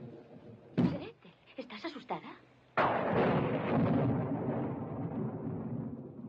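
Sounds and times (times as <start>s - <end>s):
speech: 1.6s - 2.5s
long deep rumble of thunder: 2.8s - 6.2s.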